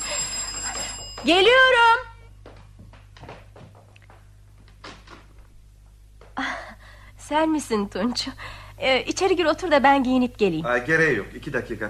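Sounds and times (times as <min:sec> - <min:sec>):
doorbell with shrill electric buzz: 0:00.0 - 0:02.1
speech: 0:01.2 - 0:02.0, 0:07.3 - 0:11.8.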